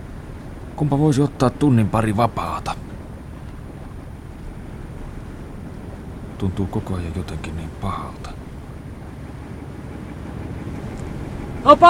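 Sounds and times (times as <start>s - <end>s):
boat rocking and pitching in choppy waves: 0.0s - 11.8s
wind rumble: 0.0s - 11.8s
speech: 0.8s - 2.9s, 6.4s - 8.4s, 11.6s - 11.8s.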